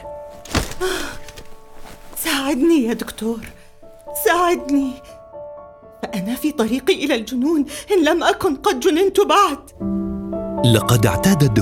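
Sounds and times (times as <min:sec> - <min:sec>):
woman throwing herself onto a chair in front of a desk: 0:00.2 - 0:02.7
chair creaking and rustling as it settles: 0:00.2 - 0:04.1
speech: 0:02.5 - 0:03.6, 0:04.3 - 0:05.1, 0:06.0 - 0:10.0, 0:10.6 - 0:11.6.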